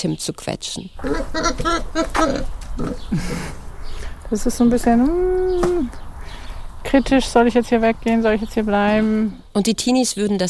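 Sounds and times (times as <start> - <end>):
speech: 0.0 - 3.6, 4.3 - 6.0, 6.8 - 10.4
large pig squeaky snorts in an open stable: 1.0 - 3.1
large pigs grunting and oinking in an open stable: 1.0 - 3.7.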